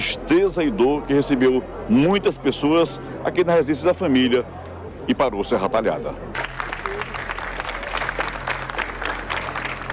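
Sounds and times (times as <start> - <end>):
speech: 0.5 - 6.4
crowd clapping along a funeral procession: 6.3 - 9.9.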